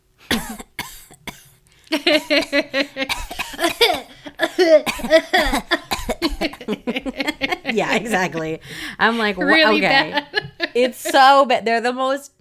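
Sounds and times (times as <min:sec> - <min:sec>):
raspy strained coughing: 0:00.3 - 0:09.0
laughter: 0:01.9 - 0:11.4
speech: 0:02.1 - 0:03.7, 0:04.6 - 0:05.6, 0:07.8 - 0:12.3
wheezy gasps: 0:08.6 - 0:09.0.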